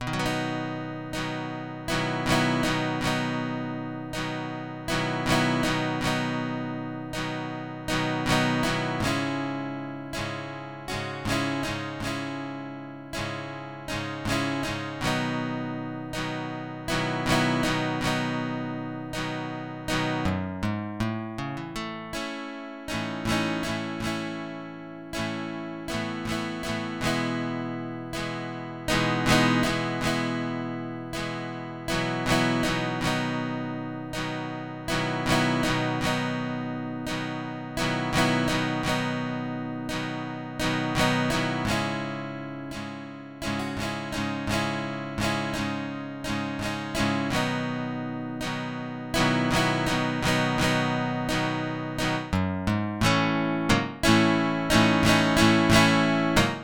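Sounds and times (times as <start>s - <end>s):
calm fireplace guitar song: 0.0s - 56.6s.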